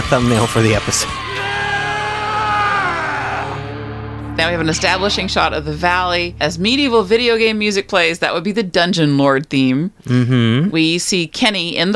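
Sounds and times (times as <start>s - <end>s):
speech: 0.1s - 1.2s, 4.4s - 11.9s
slowed-down triumphant yell with a deep warbling pitch: 1.1s - 4.0s.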